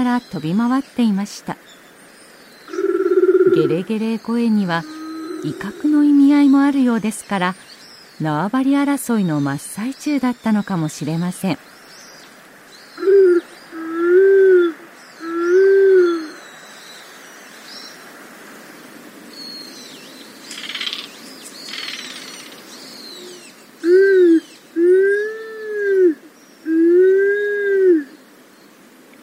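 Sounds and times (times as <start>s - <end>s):
speech: 0.0s - 1.8s, 3.5s - 11.7s
faint hiss: 0.0s - 29.2s
Japanese wood pigeon giving deep moaning coos: 2.7s - 4.0s, 4.7s - 6.2s, 13.0s - 16.4s, 23.2s - 28.2s.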